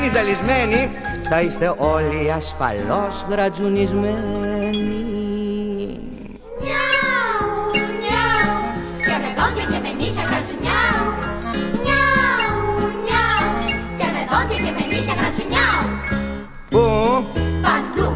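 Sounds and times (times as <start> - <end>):
speech: 0.0 - 5.2
steady instrumental backing: 0.0 - 18.0
voices imitating cat meows in a song: 6.5 - 15.9.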